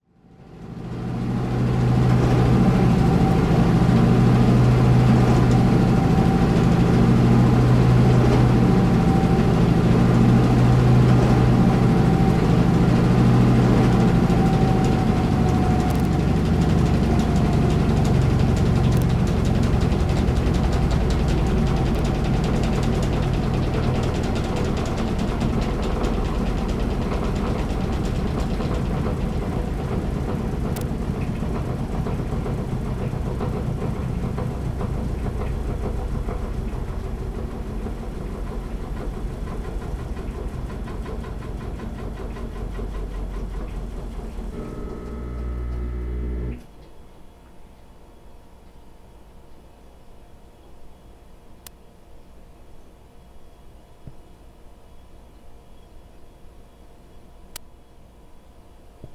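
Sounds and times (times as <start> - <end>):
washing machine running: 0.2 - 46.7.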